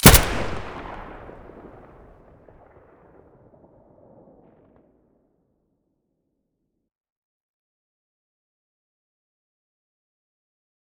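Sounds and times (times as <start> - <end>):
Abakan rifle muzzle blast: 0.0 - 1.8.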